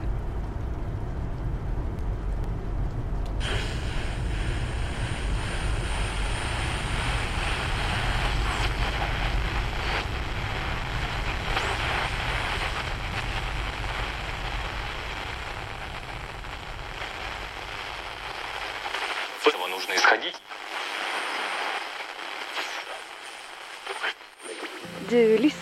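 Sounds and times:
constant low rumble: 0:00.0 - 0:19.1
steady dense rain pattering against a surface: 0:00.0 - 0:22.2
radio static hissing while a dial is turned: 0:03.4 - 0:25.6.

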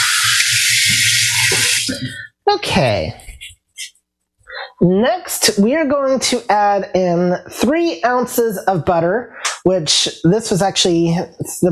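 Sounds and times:
running water from a kitchen sink tap: 0:00.0 - 0:02.1
speech: 0:01.9 - 0:03.2, 0:04.8 - 0:11.6.

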